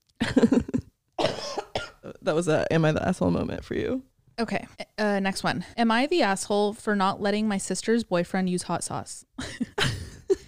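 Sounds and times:
raspy smoker's cough: 0.3 - 2.0
speech: 2.3 - 9.9.

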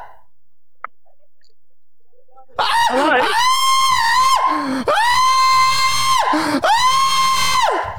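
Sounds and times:
person screaming: 2.6 - 7.9
person gasping: 2.9 - 3.3, 4.4 - 5.1, 6.3 - 6.7, 7.7 - 7.9.

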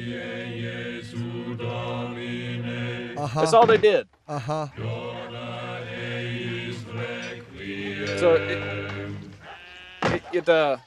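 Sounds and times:
speech: 0.0 - 0.8, 3.2 - 4.9, 8.1 - 8.8, 10.3 - 10.8
goats bleating on a farm: 8.1 - 10.8.

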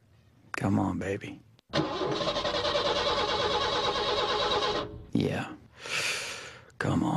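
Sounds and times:
speech: 0.6 - 2.8, 5.2 - 5.6
car engine cranking and sputtering without catching: 1.8 - 5.1.

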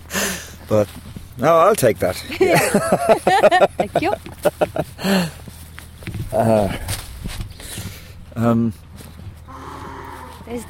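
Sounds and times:
speech: 0.7 - 5.4, 6.3 - 7.0, 8.4 - 8.8, 10.5 - 10.6
laughter: 2.3 - 5.2
donkey braying in a loud rasping series: 9.5 - 10.6.

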